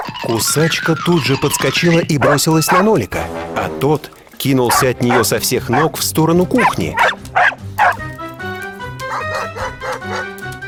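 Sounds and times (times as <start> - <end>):
speech: 0.2 - 7.1
small dog barking and yipping: 2.2 - 2.9, 4.7 - 5.9, 6.6 - 8.0, 9.1 - 10.3.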